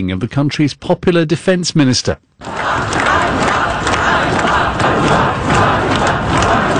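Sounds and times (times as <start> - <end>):
speech: 0.0 - 3.3
crowd of protesters roaring in Kyiv: 2.4 - 6.7
protesters shouting: 2.4 - 6.7.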